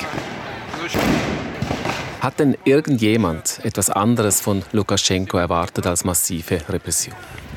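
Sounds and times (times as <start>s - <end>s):
sharp gunshot-like cracks at street protest: 0.0s - 2.2s
loud bangs at street protest: 0.0s - 2.4s
noisy outdoor crowd at street protest: 0.0s - 7.5s
speech: 0.9s - 1.2s, 2.2s - 7.5s.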